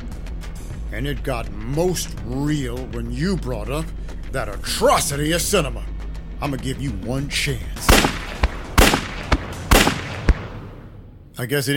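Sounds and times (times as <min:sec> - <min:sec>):
speech: 0:00.9 - 0:07.8, 0:11.4 - 0:11.7
gunshots fired in quick succession: 0:07.8 - 0:11.0.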